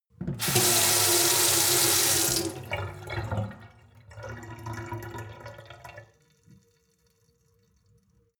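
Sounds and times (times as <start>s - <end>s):
hard water flow from a sink: 0.2s - 6.7s.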